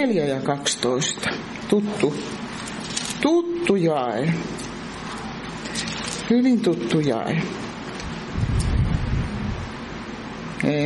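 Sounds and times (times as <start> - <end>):
speech: 0.0 - 4.7, 5.7 - 7.6, 10.6 - 10.8
wind buffeting a microphone outdoors: 8.3 - 9.7.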